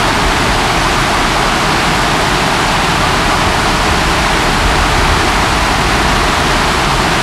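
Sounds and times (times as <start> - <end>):
waterfall at medium distance: 0.0 - 7.2.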